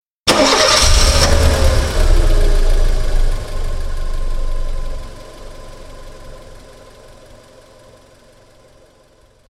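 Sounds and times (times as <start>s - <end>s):
engine revving: 0.3s - 7.4s.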